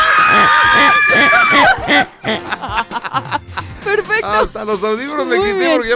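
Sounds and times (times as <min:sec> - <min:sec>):
several women shrieking with joy after winning a radio contest: 0:00.0 - 0:01.9
laughter: 0:00.2 - 0:04.5
speech: 0:04.6 - 0:05.9.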